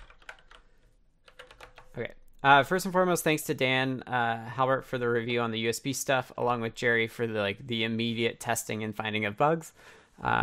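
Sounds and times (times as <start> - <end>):
typing on a computer keyboard: 0.0 - 2.0
speech: 2.0 - 10.4.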